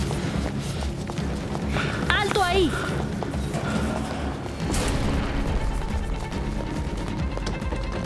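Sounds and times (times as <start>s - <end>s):
running footsteps: 0.0s - 8.0s
scuffling: 0.0s - 8.0s
heavy banging against a workshop door: 1.5s - 8.0s
loud crash of heavy object shoved against a workshop door: 3.5s - 7.2s.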